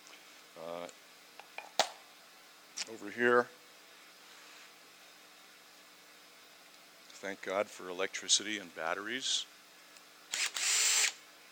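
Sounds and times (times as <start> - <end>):
speech: 2.9 - 3.6, 7.2 - 9.5
cordless drill whirring: 10.3 - 11.2.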